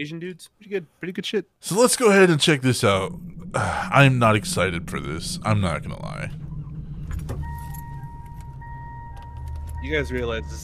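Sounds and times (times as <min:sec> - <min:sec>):
speech: 0:00.0 - 0:06.4, 0:09.8 - 0:10.6
car engine cranking, catching and idling: 0:02.1 - 0:10.6
thin electronic tone humming: 0:02.8 - 0:10.6.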